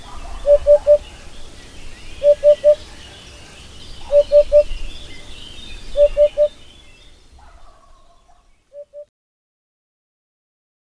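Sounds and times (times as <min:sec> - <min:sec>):
Eurasian hoopoe repeating soft triple hoots: 0:00.4 - 0:01.1, 0:02.2 - 0:02.8, 0:04.1 - 0:04.7, 0:06.0 - 0:06.5.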